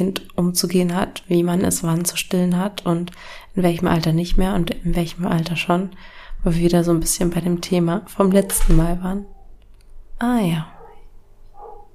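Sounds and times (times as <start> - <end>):
speech: 0.0 - 9.4, 10.2 - 10.7
dog whining softly: 9.2 - 9.6, 10.7 - 11.9.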